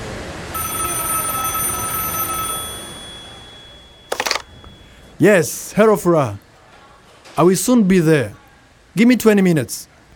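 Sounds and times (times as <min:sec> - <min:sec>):
phone ringing with incoming call: 0:00.6 - 0:05.1
speech: 0:05.2 - 0:06.4, 0:07.4 - 0:08.4, 0:09.0 - 0:09.9.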